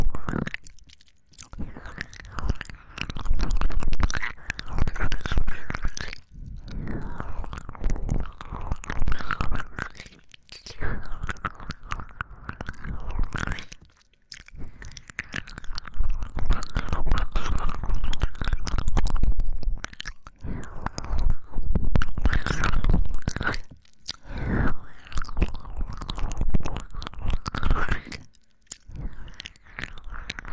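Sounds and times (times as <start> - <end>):
wet ear licking and mouth sounds: 0.0 - 30.5.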